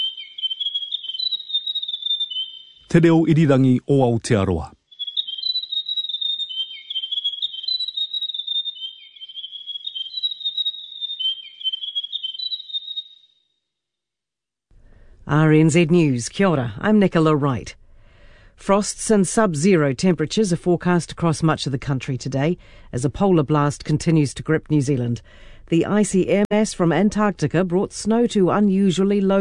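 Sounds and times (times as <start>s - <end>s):
grey warbler singing a high thin wavering trill: 0.0s - 2.9s, 4.8s - 13.3s
speech: 2.9s - 4.8s, 15.3s - 17.8s, 18.6s - 29.3s.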